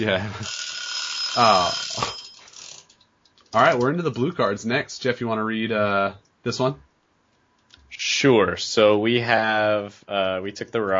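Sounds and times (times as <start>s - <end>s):
speech: 0.0s - 2.2s, 3.5s - 6.9s, 8.2s - 10.9s
timer ringing with a shrill metallic jangle: 0.4s - 2.9s.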